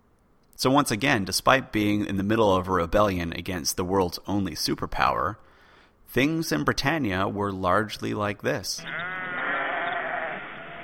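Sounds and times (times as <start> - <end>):
speech: 0.6 - 5.5, 6.1 - 9.2
sheep bleating in a long wavering call: 8.8 - 10.8.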